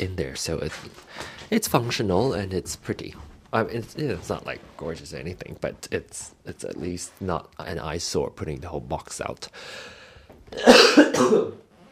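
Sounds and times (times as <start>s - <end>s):
speech: 0.0s - 11.6s
person coughing: 10.6s - 11.6s.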